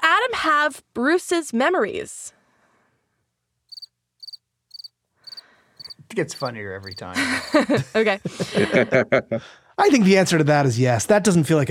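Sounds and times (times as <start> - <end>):
speech: 0.3 - 2.4, 6.1 - 11.6
cricket chirping: 3.7 - 7.6
laughter: 6.8 - 9.5.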